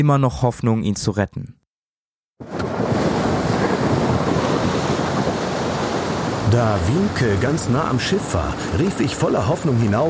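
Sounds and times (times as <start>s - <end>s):
speech: 0.0s - 1.6s, 6.5s - 10.0s
loud roaring ocean waves crashing: 2.4s - 10.0s
rushing wind: 2.4s - 10.0s.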